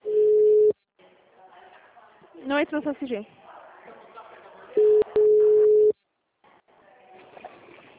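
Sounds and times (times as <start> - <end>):
telephone tone beeps after a dropped call: 0.0 - 0.8, 4.8 - 6.0
faint noise: 0.0 - 7.9
speech: 2.5 - 3.4.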